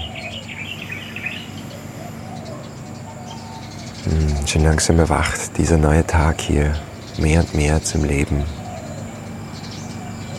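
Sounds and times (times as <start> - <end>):
birds chirping and twittering: 0.0 - 10.3
dove cooing: 0.0 - 10.3
speech: 4.0 - 8.6.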